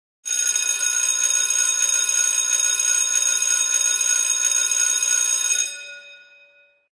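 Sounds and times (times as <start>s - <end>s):
electric school bell ringing: 0.3s - 6.9s.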